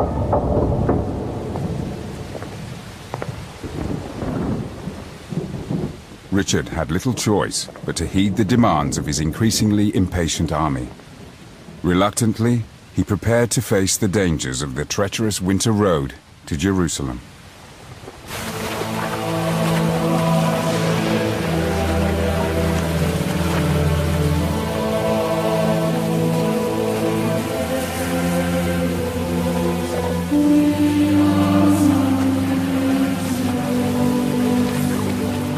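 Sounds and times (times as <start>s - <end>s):
sustained music: 0.0s - 2.5s, 18.3s - 35.5s
torrential rain: 0.0s - 35.5s
speech: 6.4s - 11.1s, 11.8s - 17.4s.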